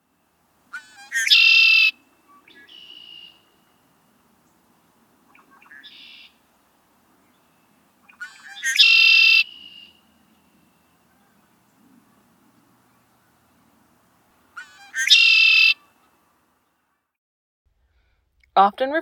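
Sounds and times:
red-winged blackbird song: 0.2 - 16.9
red-winged blackbird short calls: 0.7 - 4.6, 5.3 - 6.4, 7.3 - 13.6, 14.5 - 16.2
speech: 18.6 - 19.0.

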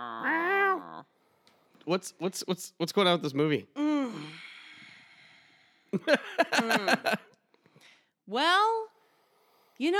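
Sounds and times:
person imitating a nasal cat meow: 0.0 - 1.1
speech: 1.9 - 3.8, 6.0 - 7.2, 8.3 - 8.8, 9.8 - 9.9.

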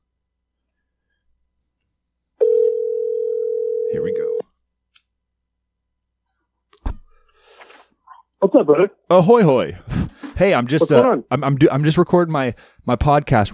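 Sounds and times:
telephone dial tone: 2.4 - 4.4
speech: 8.5 - 13.5.

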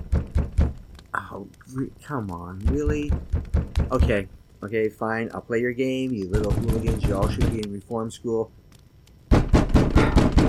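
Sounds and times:
heavy knocking on a door: 0.0 - 0.8, 2.7 - 4.2, 6.4 - 7.6, 9.3 - 10.4
speech: 1.7 - 8.6.

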